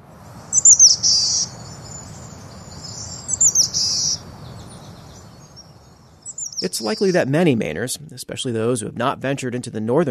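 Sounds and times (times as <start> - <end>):
soft steady hiss: 0.0 - 10.0
boreal chickadee calling: 0.4 - 7.3
speech: 6.6 - 10.0.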